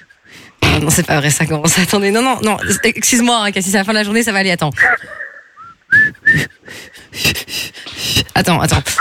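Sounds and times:
speech: 0.8 - 5.2, 6.0 - 7.7, 8.4 - 8.9
person whistling a brief wavering song melody: 5.6 - 6.8
loud breathy bursts and voice-like sounds: 6.3 - 8.4.

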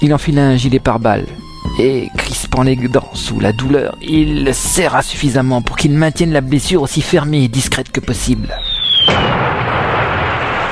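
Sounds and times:
speech: 0.0 - 9.5
short descending whistle: 8.6 - 9.4
loud explosion: 8.8 - 10.7
sustained rumbling roar of debris: 9.1 - 10.7.

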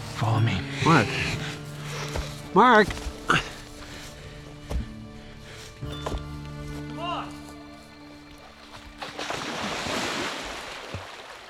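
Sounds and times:
speech: 0.2 - 1.4, 2.6 - 3.5
cold water waves washing and churning: 8.3 - 11.4.

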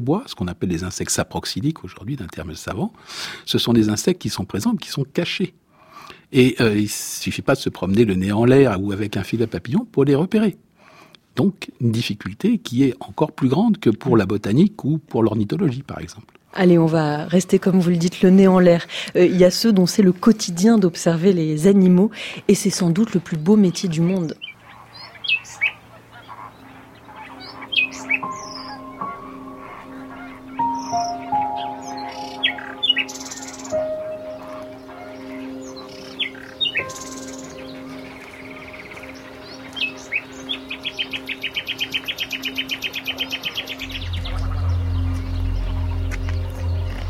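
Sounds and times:
speech: 0.0 - 10.7, 11.4 - 24.5
heron colony calling with croaking honks: 15.3 - 47.0
nightingale singing trills and whistles: 23.3 - 47.0.

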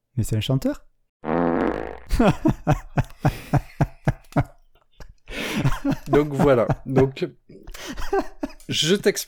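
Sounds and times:
speech: 0.2 - 0.9, 2.1 - 3.7, 6.2 - 7.5, 8.1 - 9.2
professional flatulist performing farts on stage: 1.2 - 2.3
laughter: 2.1 - 7.2, 7.8 - 8.9.

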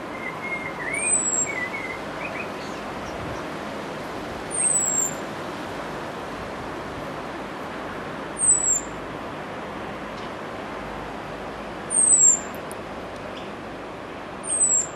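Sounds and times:
outdoor hiss: 0.0 - 14.9
common starling whistling: 0.1 - 2.8, 4.5 - 5.2, 8.4 - 8.9, 11.9 - 12.5, 14.4 - 14.9.

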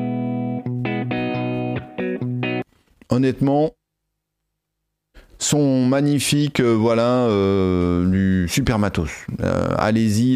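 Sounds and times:
electric guitar playing gritty chords with amplifier reverb: 0.0 - 2.7
speech: 3.2 - 3.8, 5.4 - 10.3.

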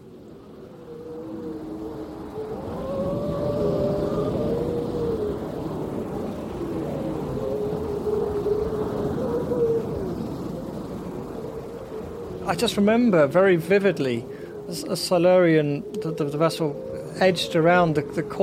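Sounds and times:
constant low rumble of wind or water: 0.0 - 18.4
seals howling during pupping season off the island of Mingalay: 0.0 - 18.4
speech: 12.5 - 18.4.

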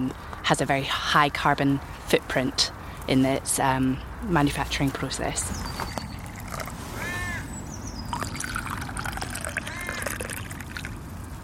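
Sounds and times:
speech: 0.0 - 6.0
faint outdoor calls: 3.8 - 11.0
warm hibiscus tea pouring into a cup: 6.0 - 6.8, 8.1 - 11.0.

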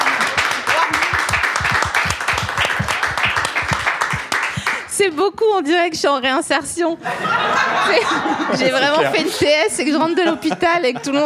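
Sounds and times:
crowd applauding: 0.0 - 4.9
speech: 5.0 - 11.2
laughter: 7.0 - 11.2.

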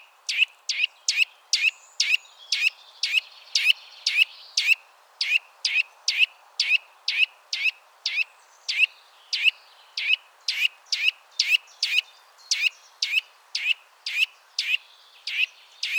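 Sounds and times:
faint background hiss: 0.0 - 15.9
Eurasian nuthatch giving contact calls: 0.3 - 15.9.

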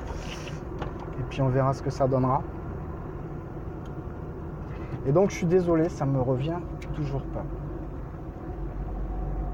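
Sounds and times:
low rumble inside a moving car: 0.0 - 9.5
speech: 1.3 - 2.6, 5.0 - 7.6.

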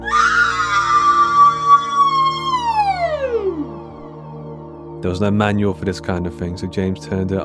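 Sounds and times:
shrill machine-like scream from a newly booted AI machine: 0.0 - 4.1
speech: 5.0 - 7.4.

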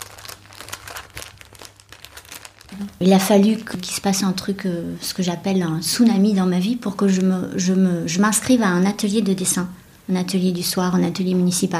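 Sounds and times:
glassine paper being crumpled: 0.0 - 3.8
speech: 2.7 - 11.7.

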